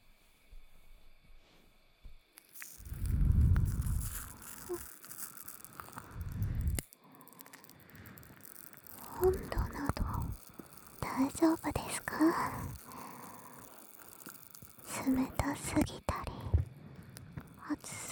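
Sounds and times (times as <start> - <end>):
foamy lather squishing as it is applied: 2.5 - 15.7
speech: 11.4 - 12.7.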